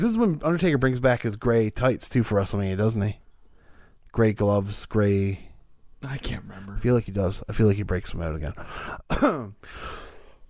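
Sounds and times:
speech: 0:00.0 - 0:03.2, 0:04.1 - 0:10.4
person clearing throat: 0:09.1 - 0:09.6
breathy noisy exhale: 0:09.6 - 0:10.4.

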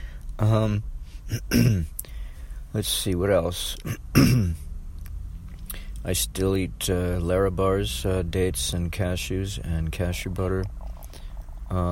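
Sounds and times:
speech: 0:00.4 - 0:02.0, 0:02.7 - 0:04.6, 0:06.0 - 0:10.8, 0:11.7 - 0:11.9
person clearing throat and coughing up phlegm: 0:01.3 - 0:01.9, 0:03.8 - 0:04.6.

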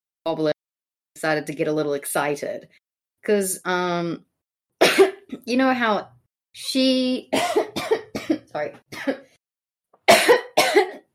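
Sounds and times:
speech: 0:00.2 - 0:00.6, 0:01.2 - 0:07.6, 0:08.5 - 0:09.2
person coughing: 0:04.8 - 0:05.4, 0:07.3 - 0:09.3, 0:10.1 - 0:11.1.

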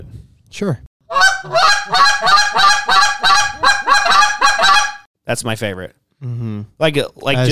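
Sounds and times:
speech: 0:00.5 - 0:03.5, 0:05.3 - 0:07.4
goose call blown in rolling honking double clucks: 0:01.1 - 0:05.0.

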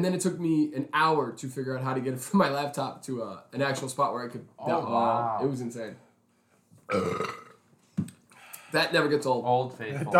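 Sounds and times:
speech: 0:00.0 - 0:06.0, 0:06.9 - 0:07.4, 0:08.7 - 0:10.1
loud drawn-out burp: 0:06.9 - 0:07.6.

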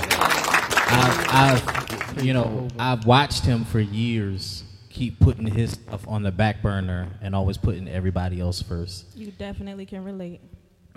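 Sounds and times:
small crowd applauding: 0:00.0 - 0:03.2
speech: 0:00.9 - 0:10.9.

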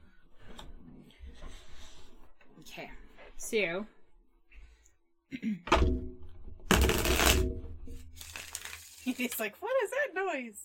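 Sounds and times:
speech: 0:02.8 - 0:04.0, 0:05.3 - 0:06.2, 0:09.0 - 0:10.6
deck of cards being shuffled: 0:08.1 - 0:09.4.

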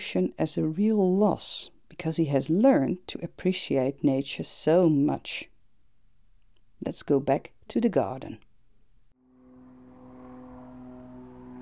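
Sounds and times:
speech: 0:00.0 - 0:05.5, 0:06.8 - 0:08.4
propeller aeroplane droning overhead: 0:09.2 - 0:11.6.

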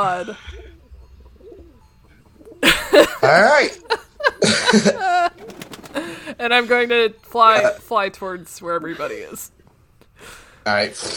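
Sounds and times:
speech: 0:00.0 - 0:00.9, 0:03.0 - 0:09.6, 0:10.2 - 0:11.1
doves cooing: 0:00.0 - 0:02.9, 0:05.3 - 0:06.3
laughter: 0:02.6 - 0:06.4.

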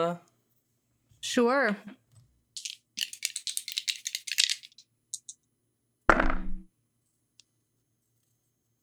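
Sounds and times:
speech: 0:00.0 - 0:00.3, 0:01.2 - 0:02.0
dice rattling in a cup or hand: 0:02.6 - 0:05.4.

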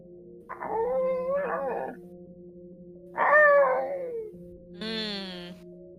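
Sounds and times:
dog howling: 0:00.5 - 0:02.0, 0:03.2 - 0:04.4.

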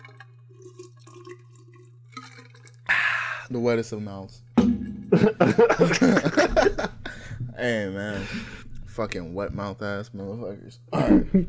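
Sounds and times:
water dripping and splashing: 0:00.0 - 0:03.4
low electrical hum: 0:00.0 - 0:11.4
speech: 0:03.5 - 0:04.5, 0:05.2 - 0:11.4
laughter: 0:05.1 - 0:07.2.

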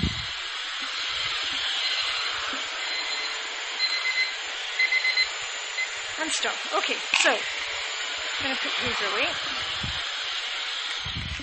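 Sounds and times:
vacuum cleaner running: 0:00.0 - 0:11.4
timer alarm beeping in hall: 0:01.8 - 0:06.0
speech: 0:06.2 - 0:07.6, 0:08.4 - 0:09.9.

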